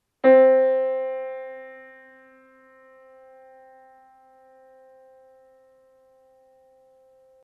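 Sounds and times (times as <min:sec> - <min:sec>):
piano middle C note: 0:00.2 - 0:07.4.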